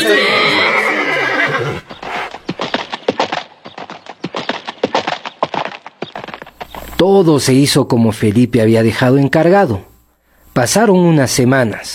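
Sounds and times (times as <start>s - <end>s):
horse neighing: 0.0s - 2.4s
horse hoofbeats clip-clopping: 1.8s - 7.1s
speech: 7.0s - 9.9s, 10.6s - 11.9s.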